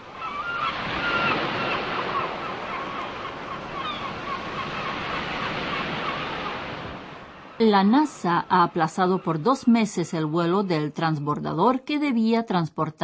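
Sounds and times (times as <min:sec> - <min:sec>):
faint seabird cries: 0:00.0 - 0:06.8
steady ocean surf: 0:00.0 - 0:09.3
speech: 0:07.6 - 0:13.0.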